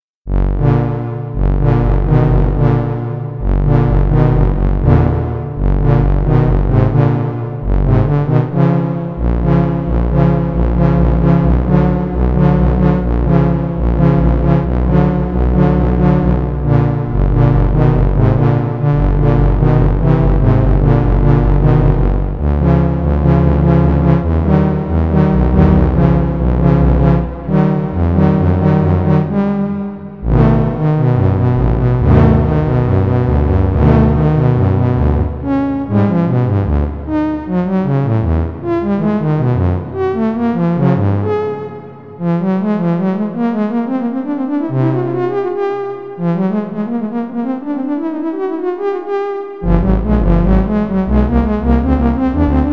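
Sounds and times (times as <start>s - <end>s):
synthesizer prelude in 13 equal temperament: 0.3s - 52.7s.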